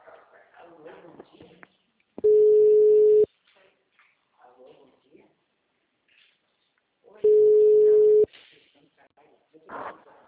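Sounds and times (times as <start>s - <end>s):
ringback tone on an outgoing phone call: 2.2s - 3.3s, 7.3s - 8.3s.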